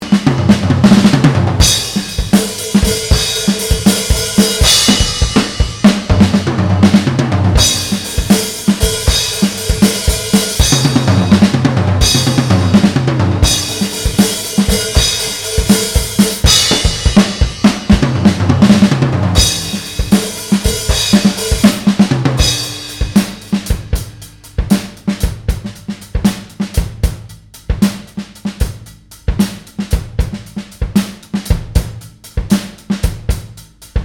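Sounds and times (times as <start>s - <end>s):
drumming: 0.0s - 34.0s.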